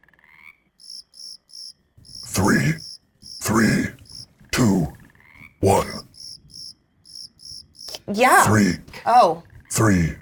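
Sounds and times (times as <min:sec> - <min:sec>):
short low frog croak: 0:00.0 - 0:08.8
shrill insect chirps pulsing in sync: 0:00.8 - 0:04.3, 0:06.1 - 0:08.0
speech: 0:02.4 - 0:02.9, 0:03.5 - 0:04.0, 0:08.1 - 0:10.1.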